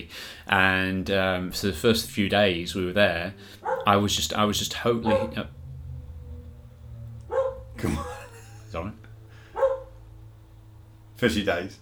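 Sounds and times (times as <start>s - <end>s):
low steady hum: 0.0s - 11.7s
speech: 0.1s - 5.6s, 7.8s - 9.0s, 11.2s - 11.7s
dog barking: 3.6s - 3.9s, 5.0s - 5.4s, 7.3s - 8.2s, 9.5s - 10.0s
laughter: 7.8s - 9.0s.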